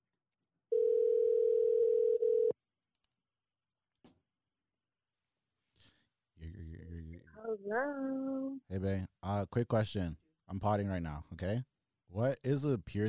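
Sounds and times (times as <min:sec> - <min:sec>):
telephone dial tone: 0:00.7 - 0:02.5
speech: 0:06.4 - 0:13.0.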